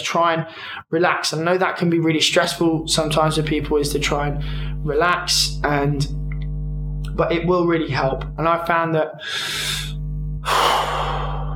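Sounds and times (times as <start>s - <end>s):
speech: 0.0s - 6.2s, 7.2s - 10.7s
deep slow breath taken to relax: 0.5s - 0.8s, 4.4s - 4.8s, 9.2s - 11.5s
steady low hum: 2.1s - 11.5s.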